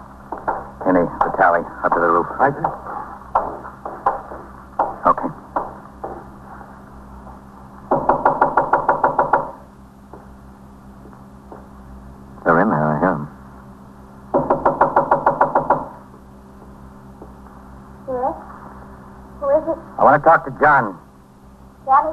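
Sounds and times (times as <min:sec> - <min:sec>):
low steady hum: 0:00.0 - 0:22.1
speech: 0:00.3 - 0:03.0, 0:20.2 - 0:21.0, 0:21.9 - 0:22.1
police officer pounding on a front door: 0:00.3 - 0:06.4, 0:07.9 - 0:10.3, 0:14.3 - 0:17.4.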